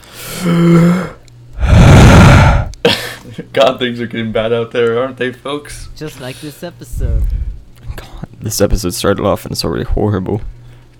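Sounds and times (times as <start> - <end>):
deep breath: 0.0 - 2.8
speech: 0.4 - 1.1, 2.8 - 3.0, 3.6 - 7.5, 8.4 - 10.9.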